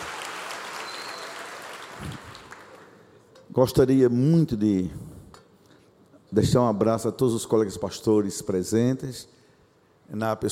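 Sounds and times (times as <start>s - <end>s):
crowd applauding: 0.0s - 3.0s
speech: 2.0s - 2.5s, 3.5s - 5.2s, 6.3s - 9.4s, 10.1s - 10.4s.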